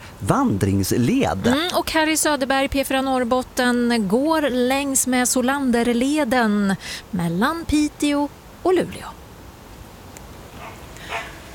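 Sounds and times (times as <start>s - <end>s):
speech: 0.2s - 9.2s
dog barking: 10.6s - 11.5s.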